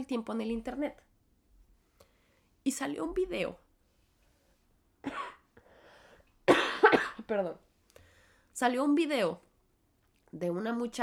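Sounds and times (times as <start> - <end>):
speech: 0.0 - 1.1, 2.6 - 3.6, 5.0 - 5.4, 7.3 - 7.7, 8.6 - 9.4, 10.3 - 11.0
harsh dry coughing: 5.0 - 5.5, 6.5 - 7.3.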